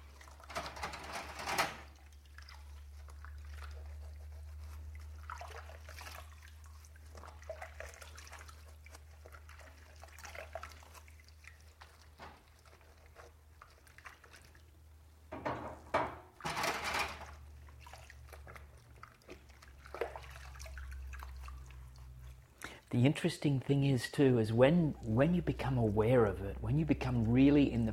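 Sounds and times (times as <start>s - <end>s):
water trickling and dripping while washing dishes: 1.9s - 15.0s, 17.2s - 22.6s, 23.9s - 27.9s
dishes clattering: 15.3s - 17.2s
speech: 22.9s - 27.9s.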